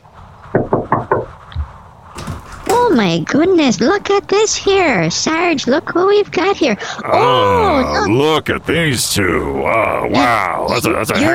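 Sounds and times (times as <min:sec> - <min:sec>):
firm knocking on a door: 0:00.5 - 0:01.4
speech: 0:03.0 - 0:11.3.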